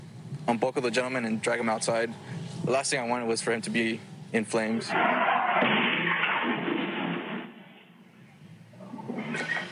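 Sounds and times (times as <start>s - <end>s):
speech: 0.5s - 5.2s
vehicle crash impact: 4.8s - 8.0s
clattering noise: 4.9s - 8.0s.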